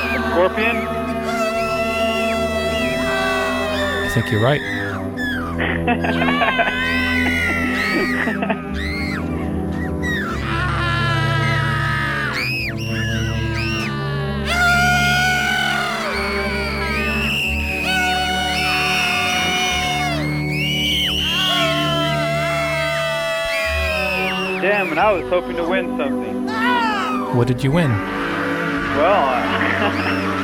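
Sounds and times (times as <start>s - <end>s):
several voices screaming in an overlapping chorus: 0.0s - 25.3s, 26.4s - 27.4s
speech: 0.4s - 1.0s, 4.2s - 4.8s, 5.6s - 9.0s, 24.9s - 28.2s, 29.0s - 30.2s
laughter: 5.4s - 9.5s, 28.9s - 30.4s.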